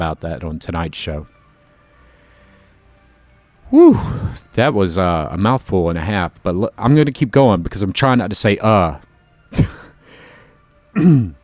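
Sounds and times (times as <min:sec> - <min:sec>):
speech: 0:00.0 - 0:01.4, 0:03.7 - 0:09.8, 0:11.0 - 0:11.4
person clearing throat: 0:09.6 - 0:09.9, 0:11.0 - 0:11.4.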